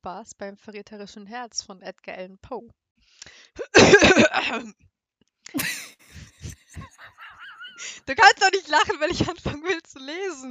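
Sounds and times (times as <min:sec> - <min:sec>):
speech: 0:00.0 - 0:04.9, 0:07.8 - 0:10.4
softer breathy huffs: 0:03.1 - 0:03.6, 0:05.7 - 0:08.1
loud raspy throat clearing: 0:05.5 - 0:07.9
laughter: 0:05.5 - 0:09.7
squeaky vocal noises: 0:05.6 - 0:08.1.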